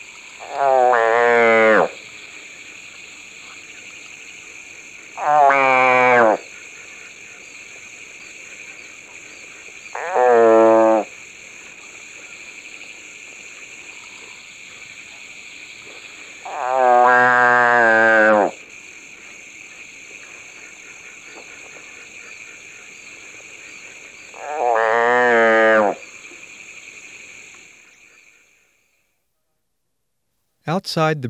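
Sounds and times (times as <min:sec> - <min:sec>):
captured pig frog wailing distress calls: 0:00.3 - 0:02.0, 0:05.1 - 0:07.6, 0:08.4 - 0:12.9, 0:13.8 - 0:26.4
speech: 0:00.4 - 0:00.8, 0:30.7 - 0:31.2.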